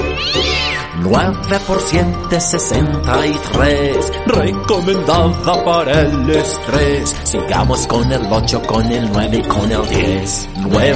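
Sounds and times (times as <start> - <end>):
cat meowing: 0.0 - 1.0
speech: 1.0 - 10.9.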